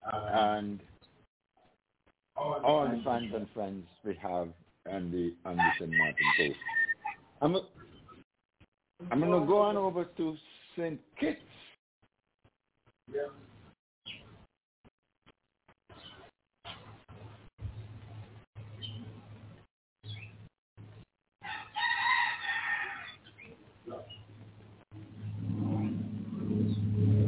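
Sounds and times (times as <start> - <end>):
speech: 0.4 - 0.9, 2.9 - 6.8, 7.4 - 7.8, 9.0 - 11.6, 13.1 - 13.5
rooster crowing: 5.6 - 7.2, 21.4 - 23.2
steady low rumble: 24.9 - 27.2.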